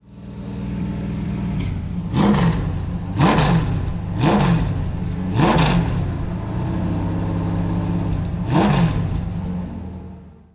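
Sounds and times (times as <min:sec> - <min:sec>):
Lola engine revving: 0:00.2 - 0:10.2.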